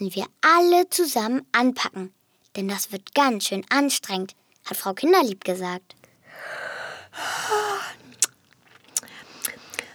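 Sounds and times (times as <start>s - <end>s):
speech: 0.0s - 8.0s
long breathy yawn: 6.4s - 8.3s
sleepy lip-smacking clicks: 7.8s - 9.9s.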